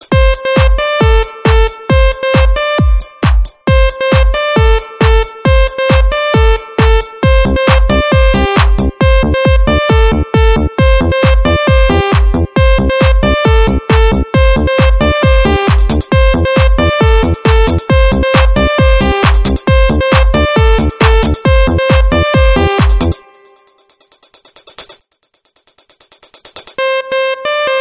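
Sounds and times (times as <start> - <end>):
electronic disco music: 0.0 - 25.0, 26.2 - 27.7.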